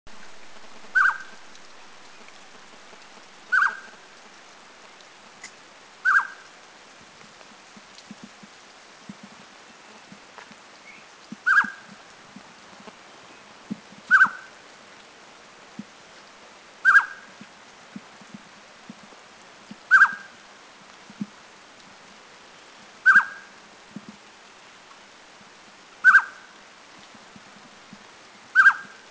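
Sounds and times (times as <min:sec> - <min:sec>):
Spot-breasted Scimitar Babbler calling in China: 0:01.0 - 0:01.4, 0:03.5 - 0:04.0, 0:05.4 - 0:06.4, 0:10.8 - 0:11.9, 0:14.1 - 0:14.5, 0:16.8 - 0:17.3, 0:19.9 - 0:20.3, 0:23.0 - 0:23.5, 0:26.0 - 0:26.4, 0:28.6 - 0:29.0.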